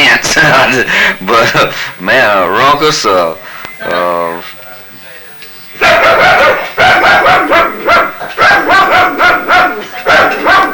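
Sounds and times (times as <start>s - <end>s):
speech: 0.7s - 4.6s
dog barking: 5.8s - 10.7s.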